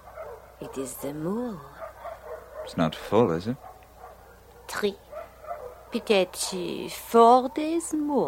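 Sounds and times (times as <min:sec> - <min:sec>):
single sharp dog bark: 0:00.0 - 0:01.1, 0:01.8 - 0:06.7
speech: 0:00.6 - 0:01.8, 0:02.7 - 0:03.7, 0:04.7 - 0:05.0, 0:05.9 - 0:08.2.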